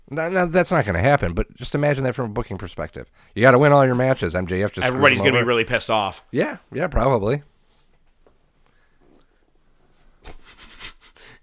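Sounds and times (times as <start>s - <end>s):
speech: 0.1s - 7.5s
loud nasal sniffing: 10.2s - 11.4s.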